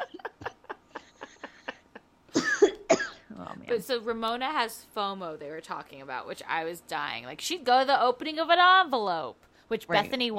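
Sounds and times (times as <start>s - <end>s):
hacking coughs: 2.3s - 3.3s
speech: 3.7s - 10.3s.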